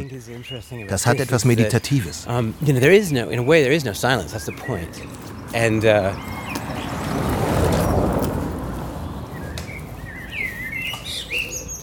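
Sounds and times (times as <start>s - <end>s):
speech: 0.0s - 6.8s
birds singing outdoors during a walk: 0.0s - 11.8s
steady broadband noise: 0.0s - 11.8s.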